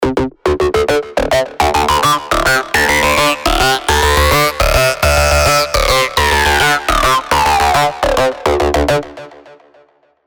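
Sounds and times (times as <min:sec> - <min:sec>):
acid synth loop in D at 105 BPM: 0:00.7 - 0:08.4.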